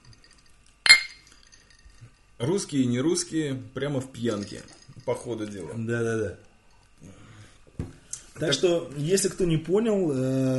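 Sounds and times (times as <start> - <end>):
glasses clinking in a toast in Moscow: 0.0 - 2.2, 4.2 - 5.4
speech: 2.4 - 7.2, 8.4 - 10.5.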